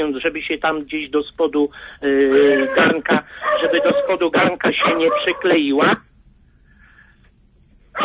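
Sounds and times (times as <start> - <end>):
speech: 0.0 - 6.1
small dog barking: 3.4 - 5.6.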